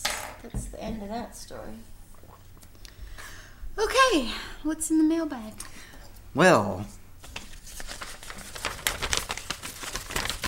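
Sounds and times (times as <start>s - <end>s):
speech: 0.4s - 2.0s, 3.8s - 7.0s
single sheet of paper being rumpled: 7.2s - 10.4s.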